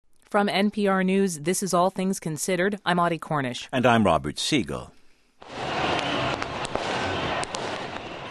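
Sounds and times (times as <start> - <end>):
speech: 0.3 - 5.6
celebratory fireworks exploding over a crowd in Tahrir Square Cairo Egypt: 5.4 - 8.2
dense roaring crowd cheering in Tahrir Square Cairo Egypt: 5.4 - 8.2.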